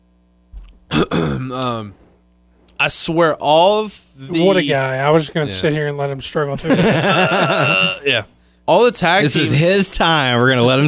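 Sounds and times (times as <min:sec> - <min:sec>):
low steady hum: 0:00.0 - 0:10.8
person coughing: 0:00.9 - 0:01.8, 0:07.0 - 0:08.2
person clearing throat: 0:00.9 - 0:01.9, 0:07.1 - 0:08.2
speech: 0:01.4 - 0:02.0, 0:02.8 - 0:10.8
laughter: 0:06.6 - 0:08.2.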